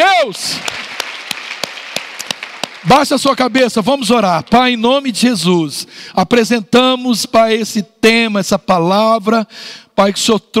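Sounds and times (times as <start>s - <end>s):
speech: 0.2s - 0.8s, 2.8s - 10.5s
sharp claps: 0.4s - 4.6s
crowd applauding: 0.4s - 4.8s.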